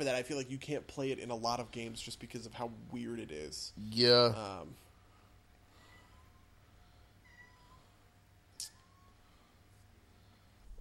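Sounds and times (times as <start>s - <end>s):
speech: 0.0s - 4.8s
female cat meowing: 7.2s - 7.9s.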